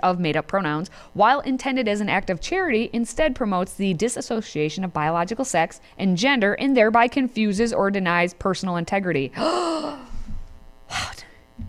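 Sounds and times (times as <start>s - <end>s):
speech: 0.0s - 10.1s, 10.9s - 11.2s
sharp breathy gasp of surprise: 9.4s - 11.4s.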